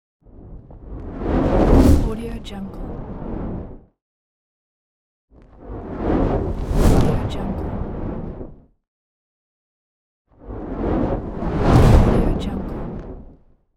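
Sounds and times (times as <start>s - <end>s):
big fire whoosh: 0.3s - 2.2s, 2.8s - 3.8s, 5.5s - 8.7s, 10.4s - 13.5s.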